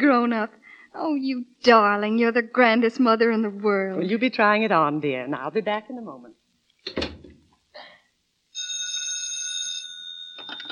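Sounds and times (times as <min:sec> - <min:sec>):
speech: 0:00.0 - 0:07.1
knocks and thumps: 0:06.8 - 0:07.6
telephone ringing with an electronic trill: 0:08.6 - 0:10.7.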